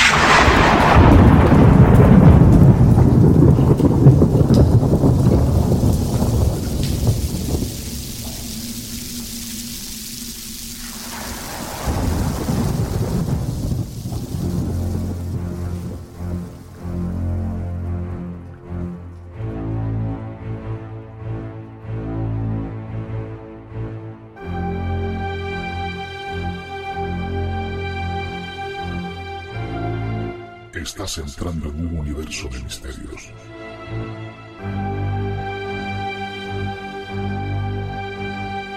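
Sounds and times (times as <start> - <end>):
thunder rumbling in a heavy thunderstorm: 0.0 - 19.0
steady rain in a heavy thunderstorm: 0.0 - 22.0, 24.4 - 29.9, 34.6 - 38.7
speech: 31.1 - 34.0.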